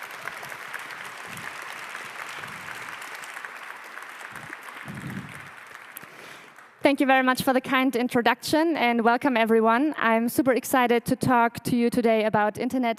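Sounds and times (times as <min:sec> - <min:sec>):
audience applause: 0:00.0 - 0:06.8
speech: 0:06.8 - 0:12.9.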